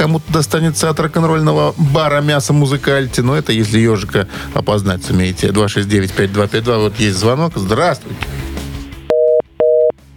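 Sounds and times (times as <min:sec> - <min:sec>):
speech: 0:00.0 - 0:08.4
telephone busy signal beeps: 0:09.1 - 0:09.9.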